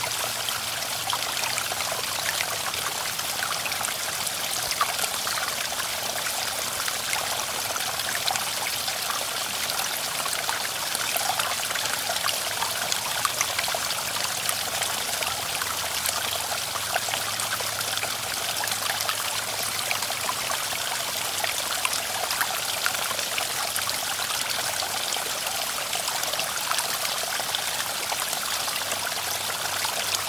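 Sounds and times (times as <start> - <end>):
faint babbling brook: 0.0 - 30.2.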